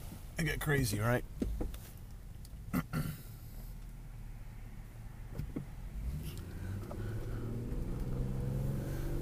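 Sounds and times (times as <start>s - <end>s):
speech: 0.4s - 1.4s
car engine revving up: 4.0s - 9.2s.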